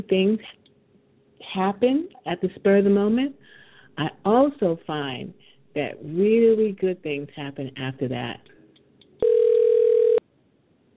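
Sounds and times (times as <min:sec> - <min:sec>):
speech: 0:00.0 - 0:00.6, 0:01.5 - 0:08.5
phone ringing with a steady electronic tone: 0:09.2 - 0:10.2.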